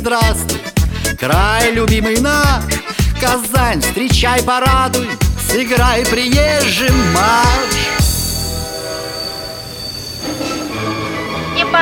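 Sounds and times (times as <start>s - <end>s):
speech: 0.0s - 8.0s
passenger train cars rumbling into a platform: 4.5s - 11.7s
passenger train wheels squealing: 6.1s - 11.7s.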